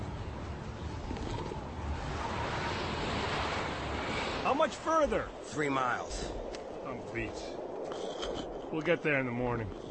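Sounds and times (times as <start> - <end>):
wind blowing outdoors: 0.0 - 9.8
speech: 4.5 - 8.0, 8.7 - 9.8.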